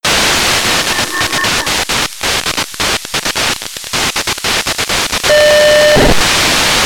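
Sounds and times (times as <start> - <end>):
MSK signal with wide FM demodulation: 0.0 - 6.8
CW signal with wide FM demodulation: 0.1 - 3.0, 5.2 - 6.8.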